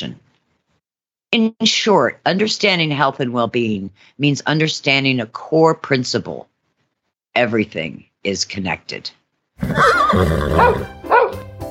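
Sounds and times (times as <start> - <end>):
speech: 0.0 - 0.2, 1.3 - 6.5, 7.4 - 11.0
horse neighing: 9.6 - 11.0.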